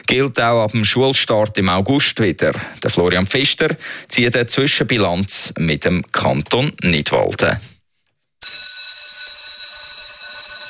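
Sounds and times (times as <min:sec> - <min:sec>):
speech: 0:00.0 - 0:07.7
school bell ringing: 0:08.4 - 0:10.6.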